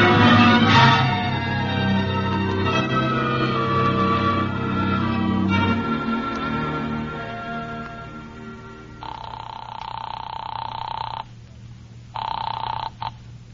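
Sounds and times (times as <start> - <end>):
low steady hum: 0.0 - 13.5
telephone ringing at a city desk: 9.0 - 11.4, 12.1 - 13.2.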